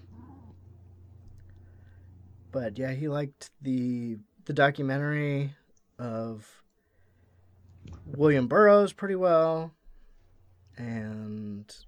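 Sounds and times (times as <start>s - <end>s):
cat meowing: 0.0s - 1.5s
steady low electrical hum: 0.0s - 11.8s
speech: 2.5s - 6.6s, 7.9s - 9.8s, 10.8s - 11.8s.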